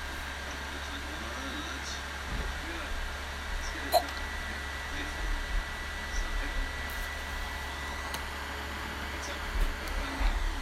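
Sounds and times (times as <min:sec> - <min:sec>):
overheating games console fan humming loudly: 0:00.0 - 0:10.6
voice murmuring: 0:03.9 - 0:04.2.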